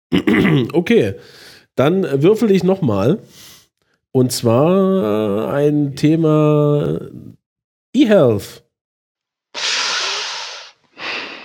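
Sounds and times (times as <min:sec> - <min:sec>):
speech: 0:00.1 - 0:03.5, 0:04.2 - 0:08.6
heavy snorting breath: 0:09.6 - 0:11.4.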